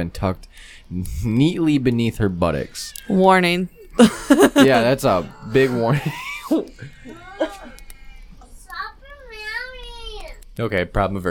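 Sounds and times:
speech: 0:00.0 - 0:07.2, 0:10.6 - 0:11.2
faint room hum: 0:00.0 - 0:11.2
young child squealing and giggling indoors: 0:07.0 - 0:08.3.

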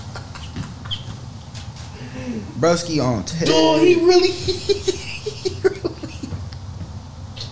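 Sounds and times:
laughter: 0:00.0 - 0:01.2, 0:03.5 - 0:06.4
chicken clucking in video playback: 0:00.0 - 0:01.8
speech: 0:02.3 - 0:05.0.

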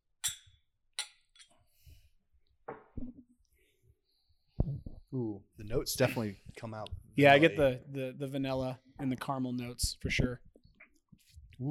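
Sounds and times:
glasses clinking in a toast: 0:00.2 - 0:01.6
speech: 0:05.1 - 0:10.5.

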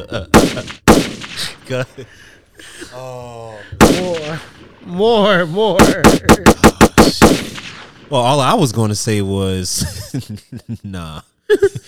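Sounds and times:
speech: 0:00.0 - 0:00.8, 0:01.7 - 0:07.5, 0:08.1 - 0:11.8
laughter: 0:00.0 - 0:07.3, 0:08.1 - 0:11.8
gunshots: 0:00.3 - 0:02.2, 0:03.7 - 0:09.2.

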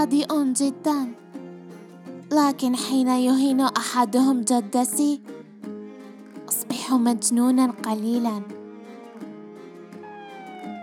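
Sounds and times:
speech: 0:00.0 - 0:01.3, 0:02.3 - 0:05.4, 0:06.9 - 0:08.6
police car siren wailing: 0:10.0 - 0:10.8.

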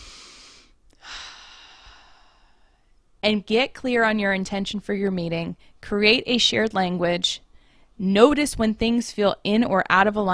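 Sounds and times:
person taking a deep breath: 0:00.0 - 0:02.9
speech: 0:03.2 - 0:07.4, 0:08.0 - 0:10.3.

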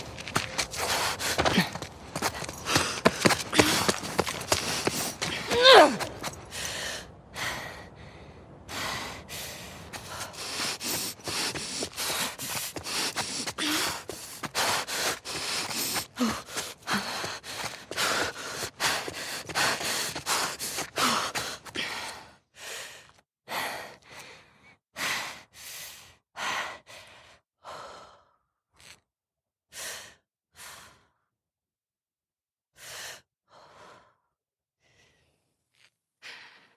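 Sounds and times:
heavy breathing of a video game character: 0:00.4 - 0:29.0.

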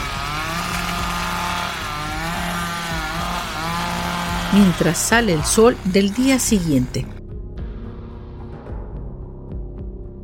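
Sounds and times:
chainsaw engine revving while being shaken: 0:00.0 - 0:07.2
speech: 0:04.5 - 0:07.2.

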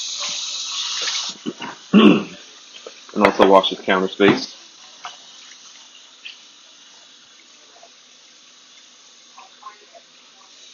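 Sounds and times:
tap water running at a sink while washing hands: 0:00.0 - 0:10.7
speech: 0:03.4 - 0:04.6.

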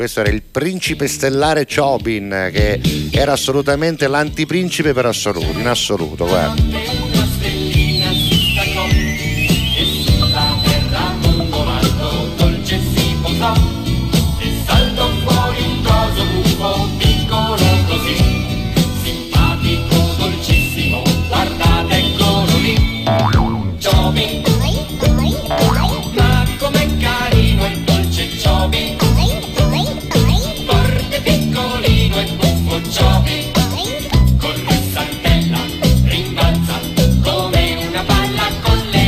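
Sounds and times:
speech: 0:00.0 - 0:07.1
bouncy cartoon theme song with full instrumentation: 0:05.2 - 0:39.0
springy sliding boing effect: 0:23.0 - 0:24.1, 0:25.0 - 0:26.1.

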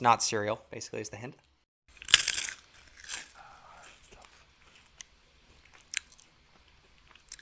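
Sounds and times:
speech: 0:00.0 - 0:01.5
chewing a crunchy snack with sharp crackles: 0:01.9 - 0:07.4
hard crunchy snack being bitten: 0:01.9 - 0:07.4.

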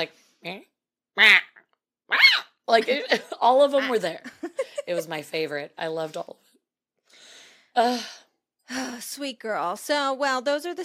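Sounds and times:
speech: 0:00.0 - 0:06.4, 0:07.8 - 0:10.8
female pet chirping: 0:01.4 - 0:02.6.

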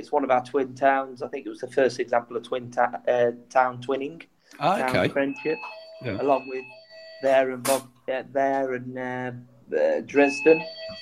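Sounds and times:
speech: 0:00.0 - 0:11.0
fire alarm ringing: 0:04.8 - 0:07.9, 0:10.1 - 0:11.0.

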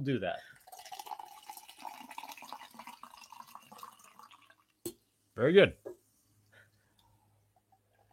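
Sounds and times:
speech: 0:00.0 - 0:00.6, 0:05.4 - 0:05.9
water poured into a glass: 0:00.5 - 0:04.8.

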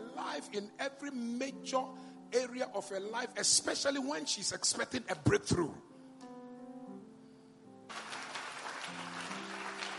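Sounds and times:
sustained keyboard chords: 0:00.0 - 0:09.9
speech: 0:00.4 - 0:05.9
audience clapping: 0:07.9 - 0:09.9.

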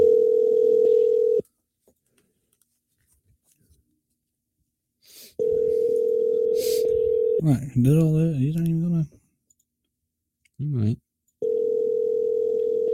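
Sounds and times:
phone ringback tone on an outgoing call: 0:00.0 - 0:01.4, 0:05.4 - 0:07.4, 0:11.4 - 0:12.9
speech: 0:07.4 - 0:09.2, 0:10.6 - 0:11.0.

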